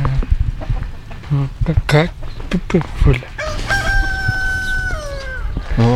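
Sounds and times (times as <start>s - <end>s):
farmyard noise: 0.0s - 5.9s
hen clucking at a farm: 3.2s - 5.9s
bird crowing call: 3.3s - 5.8s.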